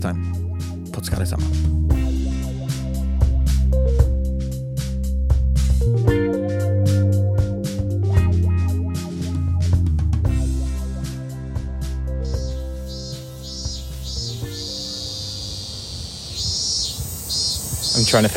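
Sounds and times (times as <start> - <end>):
speech: 0.0 - 0.4, 1.0 - 2.0, 18.1 - 18.3
mellow instrumental music: 0.0 - 18.2
summer cicadas buzzing outside a window: 12.2 - 18.3.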